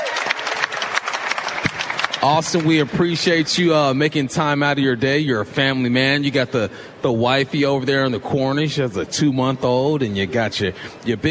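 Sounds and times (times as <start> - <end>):
small group applauding at a shopping centre court: 0.0 - 3.7
speech: 2.2 - 11.2.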